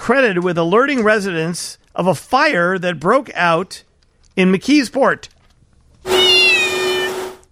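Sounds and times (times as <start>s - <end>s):
speech: 0.1s - 5.4s
cat meowing: 6.1s - 7.4s.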